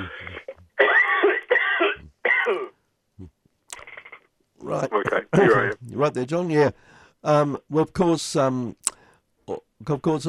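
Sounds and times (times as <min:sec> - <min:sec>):
person coughing: 0:00.0 - 0:02.8
person clearing throat: 0:00.0 - 0:03.3
speech: 0:04.7 - 0:08.9, 0:09.5 - 0:10.2.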